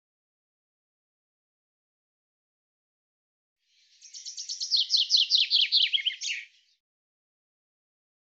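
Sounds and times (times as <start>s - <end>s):
bird chirping: 3.7s - 6.8s.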